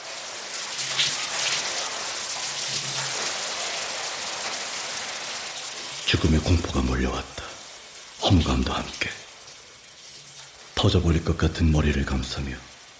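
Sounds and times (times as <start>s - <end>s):
shower water running in a bathroom: 0.0s - 12.9s
speech: 6.1s - 7.4s, 8.3s - 9.2s, 10.8s - 12.7s.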